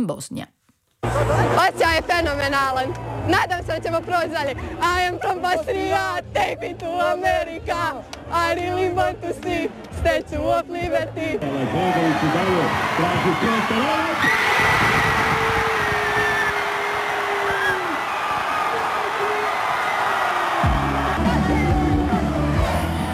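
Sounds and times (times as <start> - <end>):
speech: 0.0 - 14.4
football fans cheering and shouting with joy after a key win: 11.4 - 23.1.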